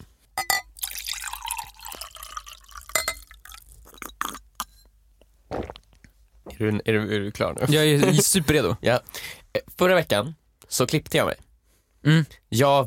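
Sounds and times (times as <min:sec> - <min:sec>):
glass clinks: 0:00.4 - 0:00.9, 0:02.8 - 0:03.4
water pouring into a glass: 0:00.7 - 0:04.2
speech: 0:06.6 - 0:11.4, 0:12.0 - 0:12.8
laughter: 0:07.6 - 0:08.5.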